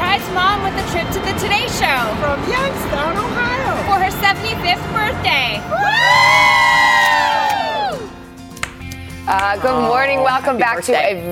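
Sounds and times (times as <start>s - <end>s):
speech: 0.2s - 6.6s, 9.3s - 11.3s
crowd cheering and whooping outdoors on a plaza: 5.6s - 8.3s.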